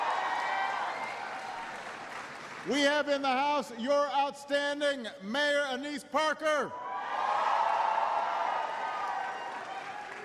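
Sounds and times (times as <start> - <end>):
audience applause at a public gathering with civic officials: 0.0 - 2.8, 7.2 - 10.2
speech: 2.6 - 6.8.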